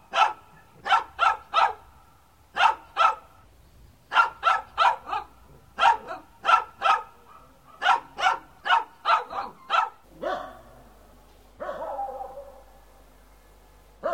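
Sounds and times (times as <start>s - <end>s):
dog barking: 0.1s - 1.9s, 2.6s - 3.3s, 4.1s - 10.7s, 11.6s - 12.7s, 14.0s - 14.1s.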